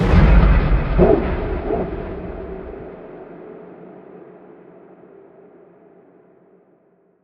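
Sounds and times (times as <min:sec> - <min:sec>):
dragon call sound effect: 0:00.8 - 0:02.8.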